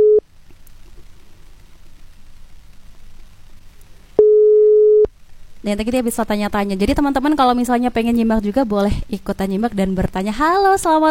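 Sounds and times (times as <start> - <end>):
telephone call tone while someone is being called: 0.0 - 0.2, 4.2 - 5.1
faint low hiss: 0.0 - 11.1
speech: 5.6 - 11.1.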